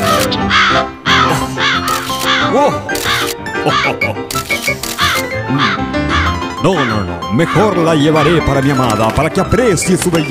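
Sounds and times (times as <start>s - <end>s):
bird cawing: 0.0s - 4.2s, 4.9s - 7.9s
laughter: 2.5s - 4.5s
speech: 2.6s - 2.9s, 3.6s - 4.8s, 6.6s - 10.2s.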